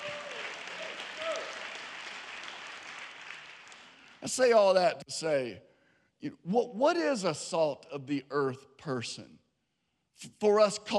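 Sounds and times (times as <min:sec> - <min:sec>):
faint voices or whoops in a crowd: 0:00.0 - 0:01.7
audience applause: 0:00.0 - 0:04.3
speech: 0:04.2 - 0:09.4, 0:10.2 - 0:10.9.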